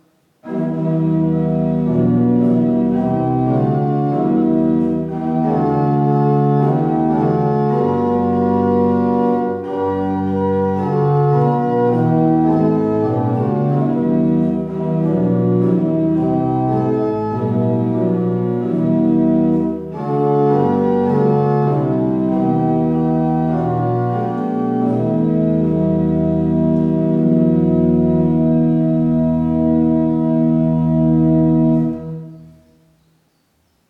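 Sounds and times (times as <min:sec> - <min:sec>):
organ playing: 0:00.4 - 0:33.0.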